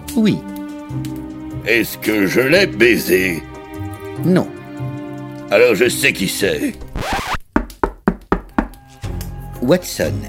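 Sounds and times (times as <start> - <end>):
speech: 0.2 - 3.5, 4.2 - 4.6, 5.5 - 7.2, 9.6 - 10.2
firm knocking on a door: 7.5 - 8.8.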